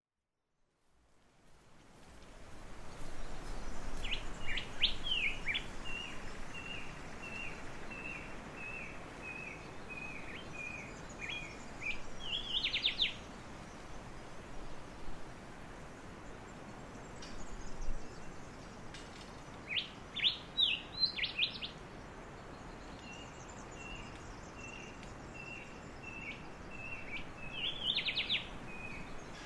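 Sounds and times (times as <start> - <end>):
rain forest dawn chorus: 2.8 - 15.0, 15.9 - 29.4.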